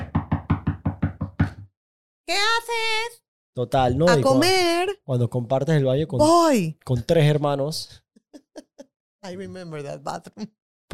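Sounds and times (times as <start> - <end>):
knocking on a bathroom door: 0.0 - 1.7
speech: 2.3 - 8.0, 8.6 - 10.9.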